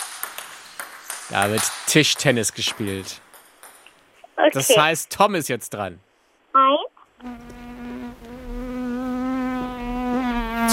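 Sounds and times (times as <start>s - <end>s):
speech: 1.3s - 3.2s, 4.4s - 6.0s, 6.6s - 7.4s
fly buzzing: 7.2s - 10.7s.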